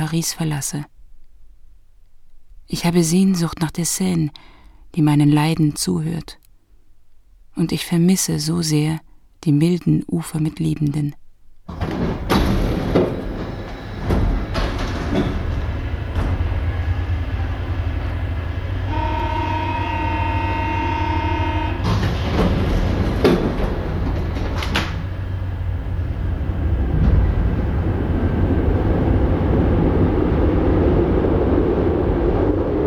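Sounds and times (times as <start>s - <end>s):
speech: 0.0s - 1.0s, 2.7s - 6.4s, 7.6s - 12.0s, 15.2s - 15.4s
metro train clunks: 11.7s - 18.9s, 21.7s - 29.9s
Paris metro train rattling and rolling along the track: 11.7s - 32.8s
bright high tonal whine of a Paris metro train: 11.8s - 32.8s
steady low rumble of a Paris metro train: 11.8s - 32.8s.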